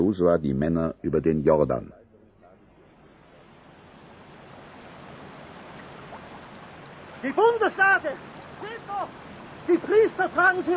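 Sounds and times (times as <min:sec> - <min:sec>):
speech: 0:00.1 - 0:02.0, 0:07.2 - 0:10.7
rushing river water: 0:02.6 - 0:10.7.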